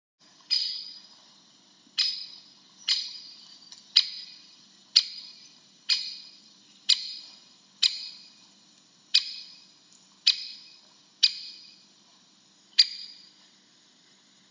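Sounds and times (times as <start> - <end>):
great spotted woodpecker: 0.5 - 1.1, 2.0 - 4.4, 5.0 - 8.3, 9.1 - 9.6, 10.2 - 11.8, 12.8 - 13.3.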